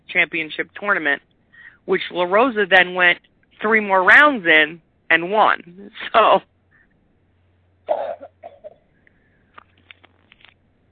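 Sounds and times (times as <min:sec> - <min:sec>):
speech: 0:00.1 - 0:06.5
cough: 0:07.9 - 0:08.9.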